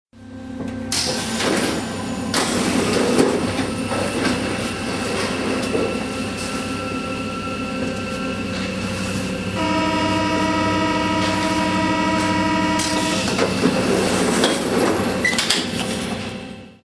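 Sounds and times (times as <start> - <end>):
metro train: 0.1 - 16.8.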